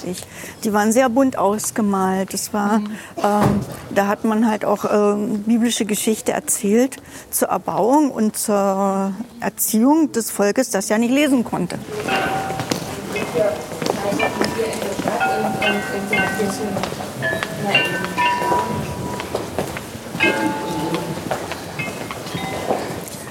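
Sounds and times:
speech: 0:00.0 - 0:12.6, 0:15.7 - 0:18.0
murmuring voices of a bustling outdoor crowd: 0:11.7 - 0:23.2
footsteps of a bustling outdoor crowd: 0:11.8 - 0:23.2
Meissen porcelain glockenspiel chiming a slow melody: 0:12.1 - 0:19.4, 0:20.2 - 0:23.2.

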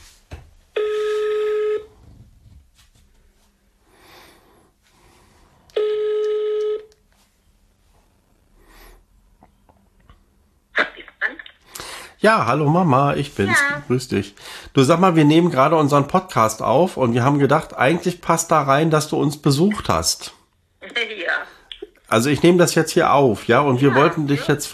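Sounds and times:
telephone ringing tones on speaker: 0:00.7 - 0:01.9, 0:05.7 - 0:06.9
speech: 0:12.2 - 0:20.4, 0:22.1 - 0:24.7.

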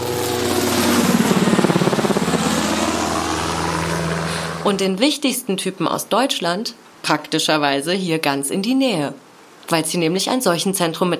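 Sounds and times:
helicopter droning overhead with rotor chop: 0:00.0 - 0:05.2
speech: 0:04.7 - 0:11.1.

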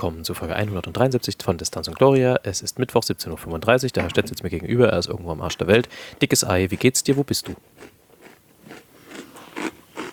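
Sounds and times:
speech: 0:00.0 - 0:08.0
crunchy chewing of food: 0:06.6 - 0:10.1.

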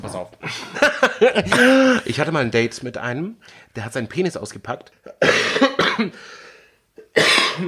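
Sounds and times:
speech: 0:00.0 - 0:06.4, 0:07.2 - 0:07.6
person coughing harshly: 0:01.3 - 0:02.1, 0:05.1 - 0:06.4, 0:07.0 - 0:07.6.

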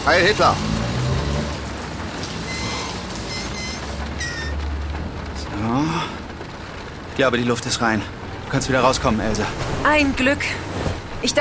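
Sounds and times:
speech: 0:00.0 - 0:00.7, 0:05.6 - 0:06.2, 0:07.2 - 0:11.4
steady rain falling on a soaked road: 0:00.0 - 0:11.4
faint high tones: 0:02.4 - 0:04.6.

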